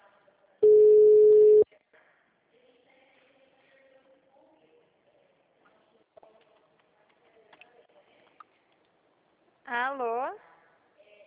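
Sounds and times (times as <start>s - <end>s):
ringback tone of an outgoing telephone call: 0.6s - 1.6s.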